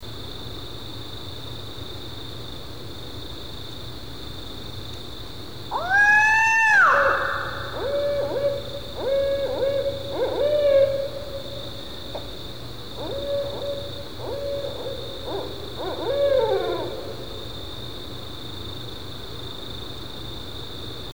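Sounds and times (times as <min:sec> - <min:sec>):
owl screaming: 0:05.7 - 0:17.8.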